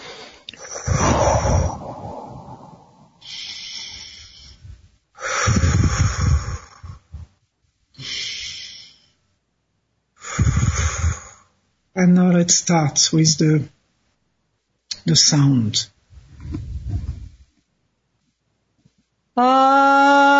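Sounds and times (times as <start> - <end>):
slow deep breaths through the nose during a guided breathing exercise: 0.0 - 7.3, 8.0 - 9.2, 10.2 - 11.6, 16.2 - 17.5
speech: 12.0 - 13.8, 15.0 - 16.6, 19.4 - 20.1.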